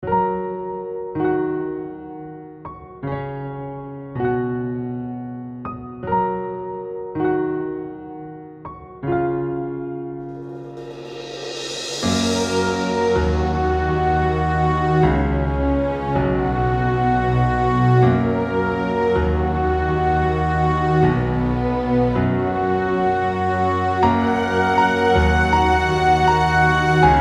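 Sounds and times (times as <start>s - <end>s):
epic cinematic piano: 0.0s - 27.2s.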